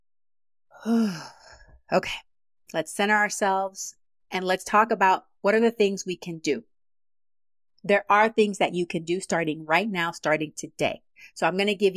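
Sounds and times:
deep breath let out as an audible sigh: 0.7s - 1.8s
speech: 0.8s - 1.3s, 1.9s - 6.7s, 7.8s - 11.9s.

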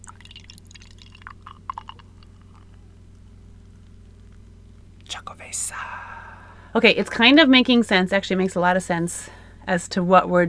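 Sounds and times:
beer pouring into a glass: 0.0s - 2.7s
speech: 5.2s - 10.4s.

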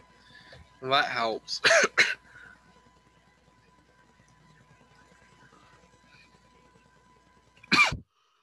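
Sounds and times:
faint steady hum: 0.0s - 8.4s
speech: 0.8s - 2.2s
person giving a short sharp cough: 1.6s - 2.2s, 7.7s - 8.0s.

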